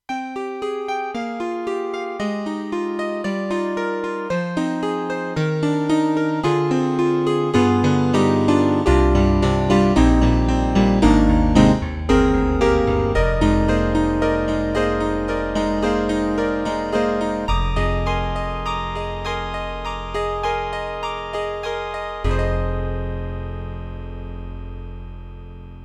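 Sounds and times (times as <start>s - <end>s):
electric grand piano on Yamaha TG100 GM: 0.2s - 25.8s.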